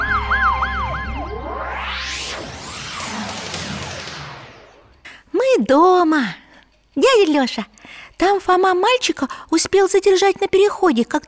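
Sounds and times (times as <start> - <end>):
ambulance siren approaching: 0.0 - 4.0
speech: 5.6 - 6.4, 7.2 - 11.2.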